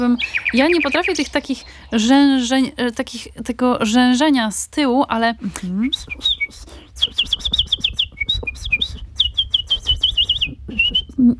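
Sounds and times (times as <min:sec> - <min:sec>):
nightingale singing in a park: 0:00.0 - 0:02.9, 0:05.7 - 0:11.1
speech: 0:00.0 - 0:07.8.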